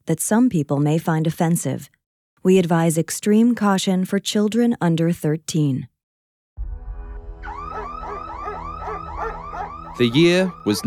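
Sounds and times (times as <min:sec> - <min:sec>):
speech: 0:00.1 - 0:05.9, 0:10.0 - 0:10.8
home security alarm wailing: 0:07.4 - 0:10.8.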